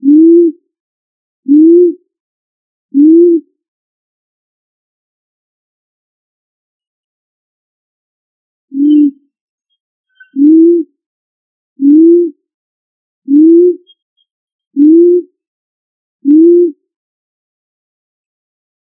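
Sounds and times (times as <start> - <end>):
pigeon cooing: 0.0 - 0.6, 3.0 - 3.4, 8.8 - 9.2, 10.2 - 10.9, 11.8 - 12.4, 13.3 - 14.0, 14.8 - 15.3, 16.3 - 16.8.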